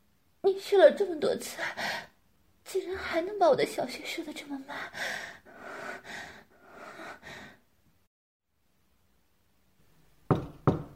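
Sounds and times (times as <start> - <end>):
speech: 0.4 - 2.1, 2.7 - 5.4
sharp knocks on a door: 10.3 - 10.9.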